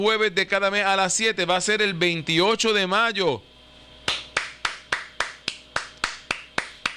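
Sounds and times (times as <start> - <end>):
speech: 0.0 - 3.5
single person clapping hands in rhythm: 4.0 - 6.9.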